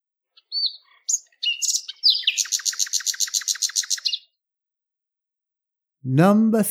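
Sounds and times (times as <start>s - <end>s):
small bird singing: 0.3s - 4.5s
speech: 6.0s - 6.6s.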